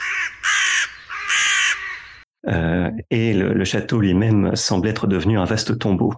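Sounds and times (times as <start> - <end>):
carrion birds cawing while feeding amid rubble in a castle courtyard: 0.0 - 2.3
speech: 2.4 - 6.1.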